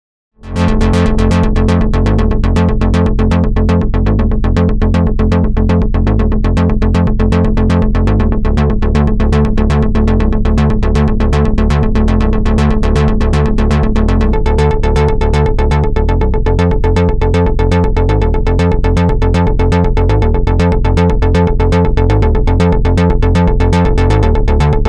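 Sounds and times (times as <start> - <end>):
pseudo duophonic synth: 0.4 - 24.8.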